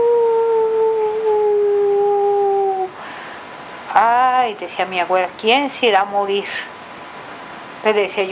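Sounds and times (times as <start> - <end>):
dog howling: 0.0 - 3.1
speech: 4.6 - 6.7, 7.8 - 8.3.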